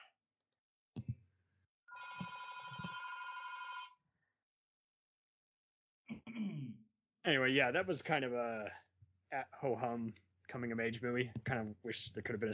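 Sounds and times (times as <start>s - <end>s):
telephone ringing: 1.9s - 4.0s
speech: 7.3s - 12.5s.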